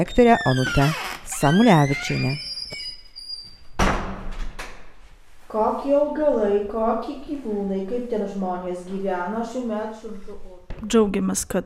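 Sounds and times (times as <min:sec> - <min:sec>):
speech: 0:00.0 - 0:02.4, 0:05.5 - 0:11.6
creaking school door: 0:00.0 - 0:04.7.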